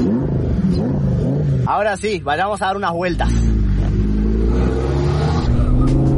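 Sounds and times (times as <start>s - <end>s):
Lamborghini sports car engine starting and revving: 0.0s - 1.7s, 3.2s - 6.1s
speech: 1.7s - 3.6s.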